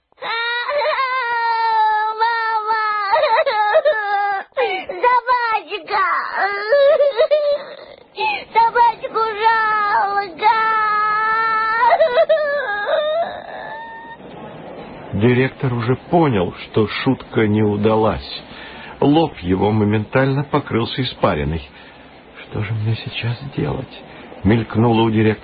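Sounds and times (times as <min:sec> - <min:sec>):
child crying desperately in high-pitched wailing sobs: 0:00.2 - 0:14.2
speech: 0:15.2 - 0:21.9, 0:22.5 - 0:25.4.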